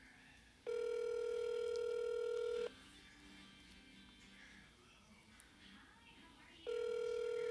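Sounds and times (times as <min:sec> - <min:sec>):
ringback tone of an outgoing telephone call: 0:00.7 - 0:02.7, 0:06.7 - 0:07.4.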